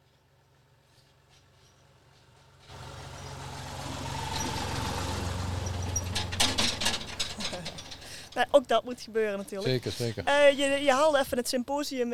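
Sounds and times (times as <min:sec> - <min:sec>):
tractor engine rumbling: 0:00.7 - 0:12.1
rattling and clanking: 0:02.6 - 0:10.2
speech: 0:08.4 - 0:12.1.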